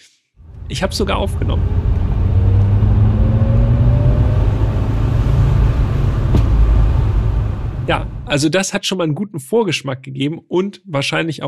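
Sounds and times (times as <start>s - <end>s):
car engine revving while turning in a village: 0.4s - 8.4s
speech: 0.7s - 1.9s, 7.9s - 11.4s.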